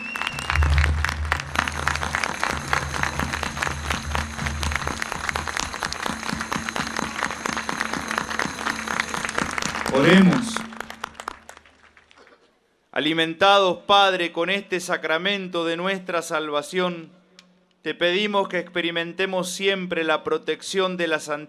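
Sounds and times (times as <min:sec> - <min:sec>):
large audience at a Catholic Mass applauding loudly: 0:00.0 - 0:12.4
low rumble: 0:00.3 - 0:07.4
speech: 0:10.0 - 0:10.5, 0:13.0 - 0:17.2, 0:17.8 - 0:21.4.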